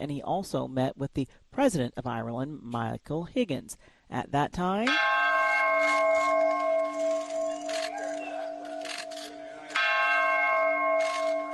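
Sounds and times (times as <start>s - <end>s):
speech: 0.0s - 5.2s
faint noise: 0.0s - 11.5s
peace bell ringing at a ceremony in Ireland: 4.9s - 11.5s.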